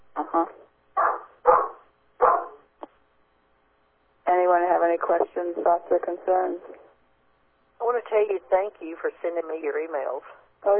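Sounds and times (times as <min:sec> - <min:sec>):
speech: 0:00.4 - 0:00.6, 0:05.1 - 0:06.9, 0:07.8 - 0:10.7
dog barking: 0:01.0 - 0:02.7.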